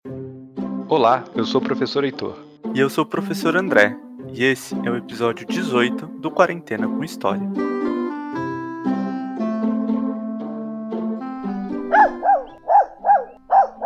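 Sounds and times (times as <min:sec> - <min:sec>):
speech: 0:00.9 - 0:07.7
sustained musical chords: 0:06.9 - 0:13.8
dog barking: 0:11.9 - 0:13.8.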